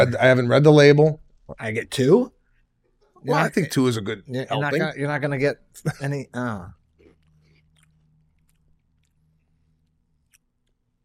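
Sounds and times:
speech: 0:00.0 - 0:02.4, 0:03.2 - 0:06.8
chewing a crunchy strawberry-flavored snack: 0:06.8 - 0:10.8.

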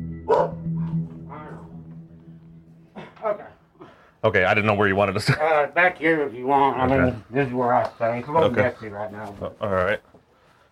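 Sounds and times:
caged bulldog barking at a visitor in a home: 0:00.3 - 0:00.9
speech: 0:04.2 - 0:10.1.

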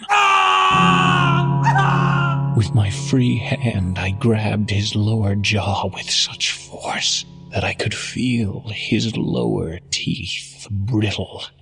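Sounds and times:
man letting out a loud anguished scream: 0:00.0 - 0:02.5
speech: 0:02.6 - 0:11.6.

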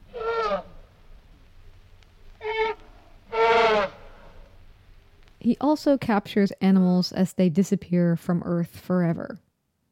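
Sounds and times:
elephant trumpeting: 0:00.0 - 0:00.8, 0:02.4 - 0:04.4
speech: 0:05.4 - 0:09.4.

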